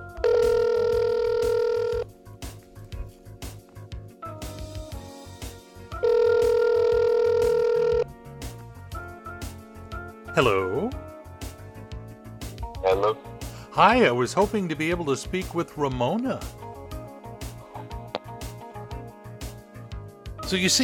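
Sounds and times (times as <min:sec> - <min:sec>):
phone line ringing: 0:00.0 - 0:02.1, 0:05.9 - 0:08.1
soft rhythmic music bed: 0:00.0 - 0:20.8
speech: 0:10.4 - 0:11.0, 0:13.8 - 0:16.6, 0:20.5 - 0:20.8.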